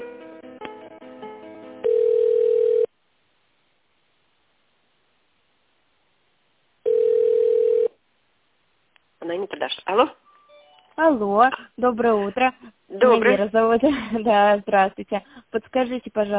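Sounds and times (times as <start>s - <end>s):
telephone line tone beeps while a call is transferred: 1.8s - 2.9s, 6.9s - 7.9s
speech: 9.3s - 10.2s, 11.0s - 16.3s.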